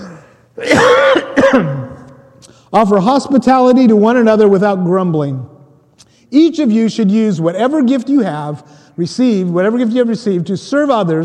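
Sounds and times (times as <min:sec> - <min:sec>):
person clearing throat: 0:00.0 - 0:02.1
person coughing: 0:00.0 - 0:02.1
speech: 0:01.5 - 0:01.7, 0:02.7 - 0:05.5, 0:06.3 - 0:11.2.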